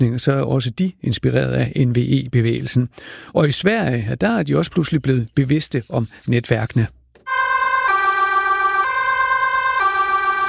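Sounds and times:
speech: 0.0s - 7.0s
loud two-tone emergency vehicle siren: 7.3s - 10.4s.

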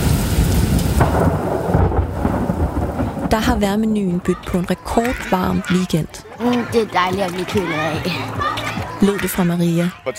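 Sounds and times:
steady rain hissing in a heavy storm: 0.0s - 4.5s
loud rumbling thunderclap with sharp crack in a heavy storm: 0.0s - 6.0s
speech: 3.3s - 10.1s.

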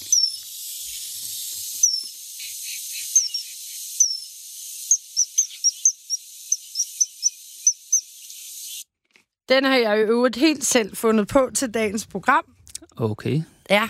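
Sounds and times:
coal tit calling: 0.0s - 8.8s
speech: 9.5s - 13.8s.

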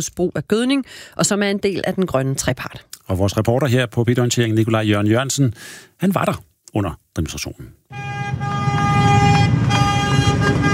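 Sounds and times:
speech: 0.0s - 8.5s
low tractor engine rumble: 7.9s - 10.7s
tractor horns honking while driving past during a farmers' demonstration: 7.9s - 10.7s.

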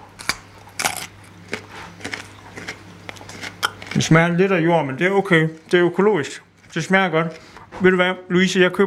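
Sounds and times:
crunching bites of a small raw organic carrot: 0.1s - 4.4s
speech: 4.0s - 8.8s.

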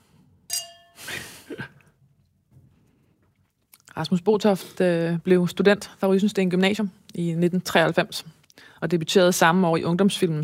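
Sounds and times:
glasses clinking in a toast: 0.5s - 1.2s
speech: 4.0s - 10.4s.

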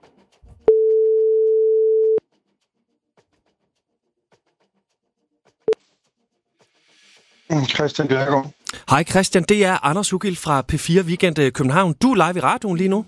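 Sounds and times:
brief beep: 0.7s - 2.2s
outgoing telephone call ringing tone from a radio studio: 0.7s - 2.2s
speech: 7.6s - 13.0s.

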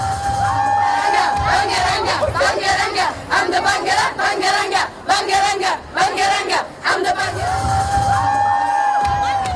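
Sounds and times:
whoops and shouts: 0.0s - 1.6s, 7.5s - 9.5s
large crowd cheering and chanting at Sofia Airport in Bulgaria: 0.0s - 9.5s.

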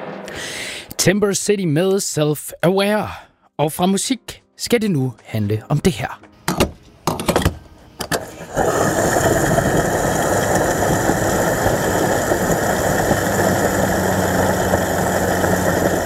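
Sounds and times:
speech: 1.0s - 6.3s
fuel flowing into a car at a fuel pump: 8.1s - 16.0s.

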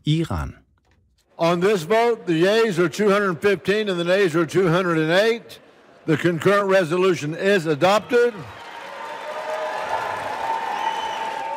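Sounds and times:
speech: 0.0s - 0.6s, 1.4s - 8.6s
applause and cheering from a large crowd in a legislative chamber: 7.8s - 11.5s.

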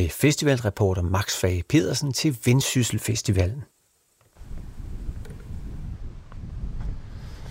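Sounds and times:
speech: 0.0s - 3.8s
strong wind buffeting the microphone on the North Sea coast: 4.4s - 7.5s.

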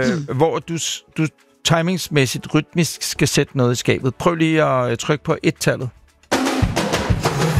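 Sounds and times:
speech: 0.0s - 6.0s
rock drum fill played from a soundboard: 6.3s - 7.5s.

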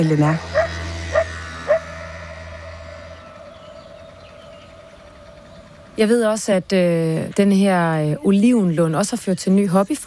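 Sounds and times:
speech: 0.0s - 0.6s, 6.0s - 10.0s
steady low hum: 0.0s - 10.0s
dog barking in Italy at sunrise by the Mediterranean: 0.5s - 1.9s.

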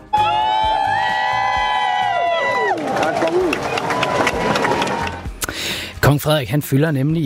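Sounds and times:
large outdoor crowd cheering and shouting on Amalienborg Palace Square in Copenhagen: 0.0s - 5.4s
speech: 6.1s - 7.2s.

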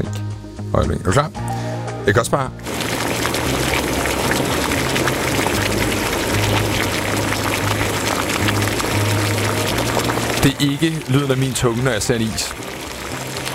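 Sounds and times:
speech: 0.0s - 3.0s, 10.4s - 12.6s
water boiling vigorously at a rolling boil: 2.6s - 13.5s.

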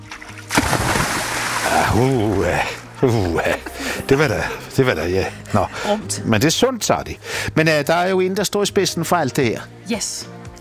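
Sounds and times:
cannonball jump splashing into the sea: 0.0s - 3.0s
churning sea water sloshing: 0.0s - 4.0s
laughter: 1.6s - 5.9s
speech: 2.0s - 10.4s.

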